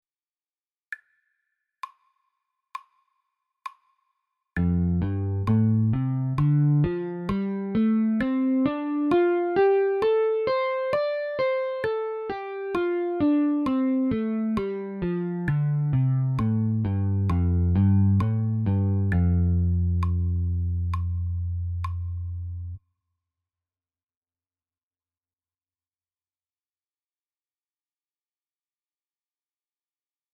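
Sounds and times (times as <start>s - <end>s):
E and D notes over 3 octaves: 4.6s - 22.8s.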